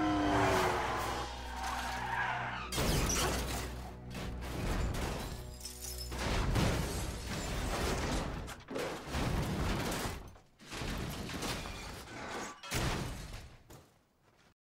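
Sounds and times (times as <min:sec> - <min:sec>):
car tires squealing and skidding while swerving: 0:00.0 - 0:03.4
car crashing with heavy impacts and crunching metal: 0:01.0 - 0:13.7.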